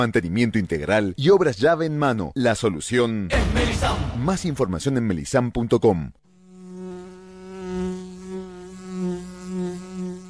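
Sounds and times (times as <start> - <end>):
speech: 0.0 - 6.2
bee buzzing: 6.3 - 10.2.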